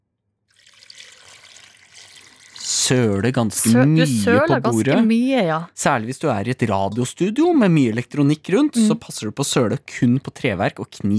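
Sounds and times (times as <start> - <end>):
cold water poured into a blender: 0.5 - 3.3
speech: 2.9 - 11.1.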